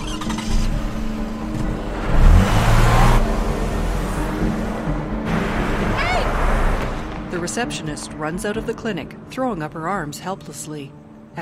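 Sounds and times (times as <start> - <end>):
SUV engine accelerating away: 0.0 - 6.9
speech: 7.4 - 11.3.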